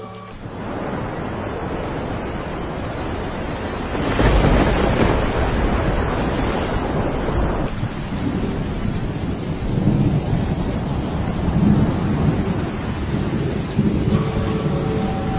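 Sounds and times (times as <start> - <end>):
waves crashing against something: 0.0 - 9.4, 11.1 - 15.3
heavy rain: 0.0 - 15.3
rolling thunder: 0.0 - 15.3
wind buffeting: 0.0 - 15.3.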